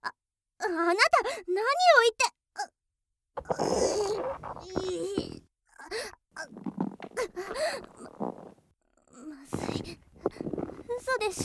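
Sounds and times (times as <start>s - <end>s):
speech: 0.8s - 2.8s, 3.4s - 6.7s, 11.0s - 11.4s
stomach gurgling from intestinal gas after taking an intestinal activator medicine: 3.4s - 5.4s, 6.4s - 11.4s.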